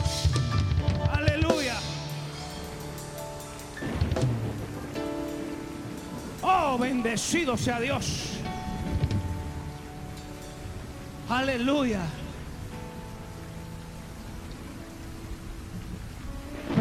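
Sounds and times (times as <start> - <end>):
faint low rumbles possibly thunder: 0.0 - 16.7
steady rain: 0.0 - 16.7
man singing emotional exclamations: 1.1 - 2.1, 6.4 - 8.5, 11.3 - 12.4
speech: 6.8 - 8.3, 11.3 - 12.2.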